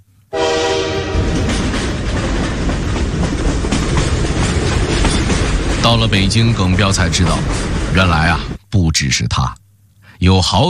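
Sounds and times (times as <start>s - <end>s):
train horn-like tonal note: 0.3s - 1.6s
train running on rails: 0.4s - 8.6s
speech: 5.9s - 9.6s, 10.2s - 10.6s.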